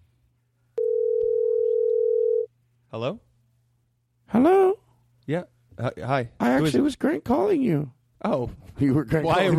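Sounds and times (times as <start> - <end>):
telephone dial tone before a crank phone call: 0.8 - 2.5
speech: 3.0 - 3.3, 4.3 - 9.5.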